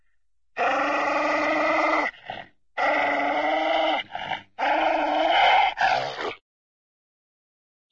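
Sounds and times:
cartoon spaniel growling angrily: 0.6 - 6.4.

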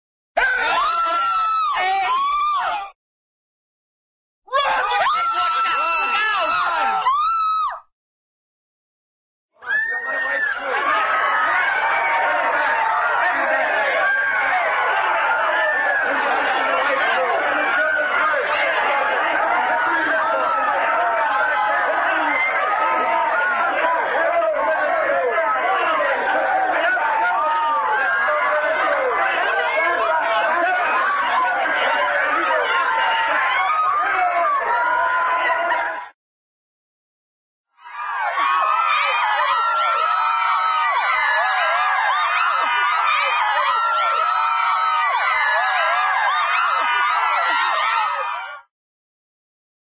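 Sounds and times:
cartoon crowd panic screams: 0.4 - 3.0, 4.5 - 7.9, 9.6 - 36.1, 37.8 - 48.7.

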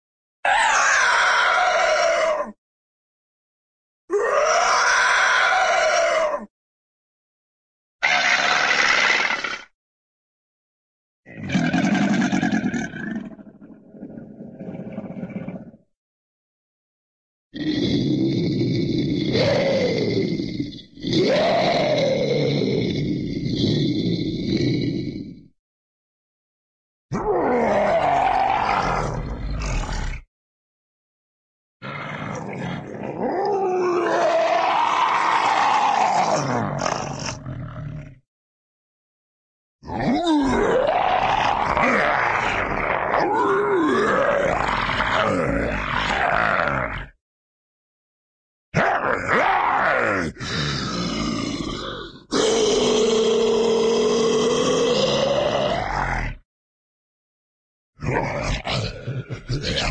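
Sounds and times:
cartoon cyclops monster creature roar: 0.4 - 2.6, 4.1 - 6.5, 8.0 - 9.7, 11.3 - 13.6, 17.6 - 25.5, 27.1 - 30.3, 31.8 - 38.2, 39.8 - 47.2, 48.8 - 56.5, 58.0 - 59.9.

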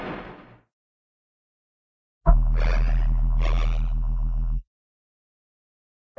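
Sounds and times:
cartoon sci-fi space effect: 2.3 - 4.6.

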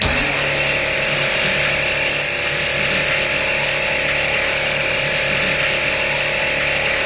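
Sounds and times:
laser beam: 0.0 - 7.0.

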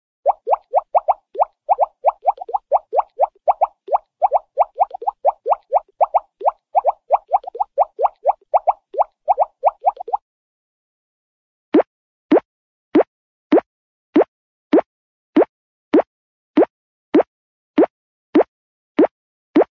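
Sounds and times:
fast cartoon water drips: 0.2 - 10.2, 14.2 - 19.6.

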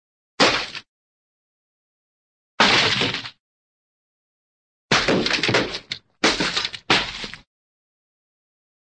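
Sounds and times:
cartoon watermelon smash: 0.4 - 0.8, 4.9 - 7.4.

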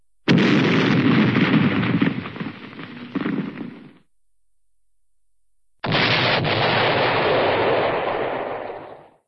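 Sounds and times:
cartoon explosion boom: 0.3 - 4.0, 5.8 - 9.2.

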